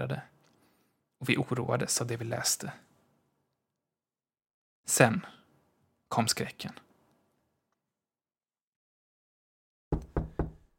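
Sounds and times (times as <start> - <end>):
speech: 0.0 - 0.3, 1.2 - 2.9, 4.9 - 5.4, 6.1 - 6.8
firm knocks on a bedroom door at night: 9.9 - 10.7.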